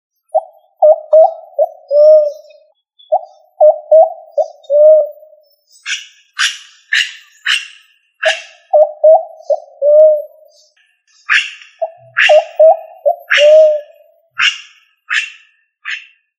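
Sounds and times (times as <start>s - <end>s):
pigeon cooing: 0.3s - 5.3s, 6.4s - 10.5s, 11.3s - 15.3s.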